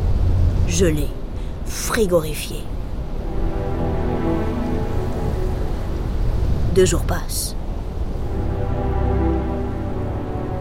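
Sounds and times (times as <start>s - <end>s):
storm rain-like hiss: 0.0s - 10.5s
speech: 0.7s - 2.8s, 6.8s - 7.6s.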